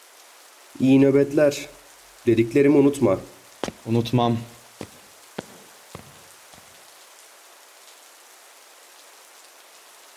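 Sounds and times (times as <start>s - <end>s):
soft steady rain hiss: 0.0s - 10.1s
speech: 0.8s - 4.6s
sharp taps: 3.6s - 4.2s, 4.8s - 6.8s.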